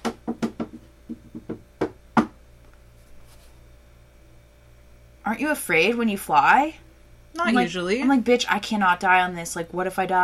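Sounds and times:
knocking on wood: 0.0 - 2.4
speech: 5.3 - 6.8, 7.4 - 10.2.

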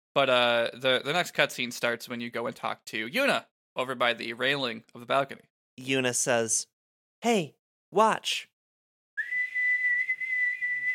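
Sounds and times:
speech: 0.2 - 8.5
loud shrill finger whistle: 9.2 - 10.9.

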